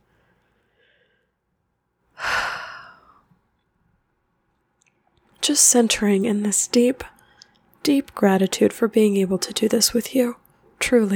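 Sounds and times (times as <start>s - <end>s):
slow deep breath: 0.0s - 1.4s, 2.2s - 3.3s
speech: 5.5s - 7.2s, 7.9s - 11.1s.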